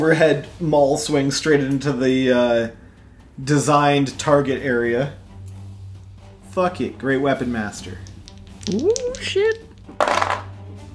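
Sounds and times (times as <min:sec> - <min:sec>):
speech: 0:00.0 - 0:02.8, 0:03.4 - 0:05.2, 0:06.6 - 0:08.1, 0:08.7 - 0:09.6
dice rattling across a hard table: 0:07.7 - 0:10.6.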